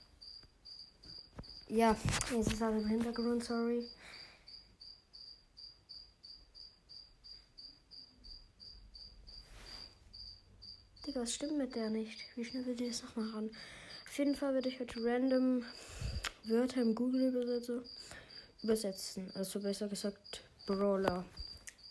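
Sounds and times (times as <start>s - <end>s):
cricket chirping in a terrarium: 0.0s - 21.8s
soft rustle: 1.4s - 3.4s, 9.3s - 10.3s
speech: 1.7s - 4.2s, 11.2s - 21.4s.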